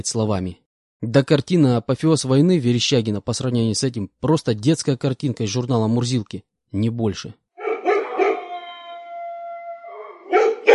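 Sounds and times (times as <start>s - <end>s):
speech: 0.0s - 7.4s
stray dogs in a quarry barking: 7.6s - 9.3s, 9.9s - 10.7s
stray dog in a quarry howling: 7.6s - 10.7s.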